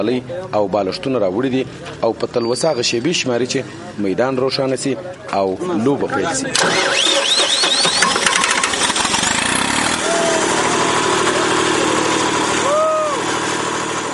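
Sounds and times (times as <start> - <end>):
speech: 0.0 - 7.2
generator engine running to light a sports ground: 6.5 - 14.1.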